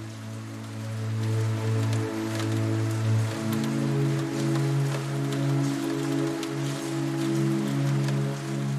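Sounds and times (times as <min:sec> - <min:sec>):
rain pattering against a large window pane: 0:00.0 - 0:08.7.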